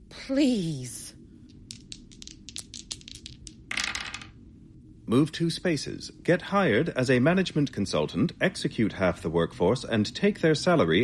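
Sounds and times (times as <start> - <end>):
speech: 0.3 - 1.0, 5.1 - 11.0
dice rolled in a game rattling and clacking: 1.4 - 4.4.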